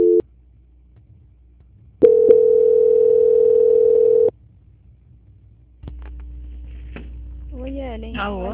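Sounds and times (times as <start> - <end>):
telephone tones while a call is being transferred: 2.0 - 4.3.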